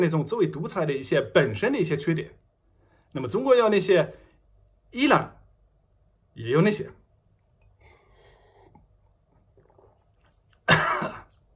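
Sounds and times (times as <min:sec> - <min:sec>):
speech: 0:00.0 - 0:02.4, 0:03.1 - 0:04.2, 0:04.9 - 0:05.4, 0:06.4 - 0:07.0
harsh cough after a mint drink went down the wrong way: 0:10.6 - 0:11.4.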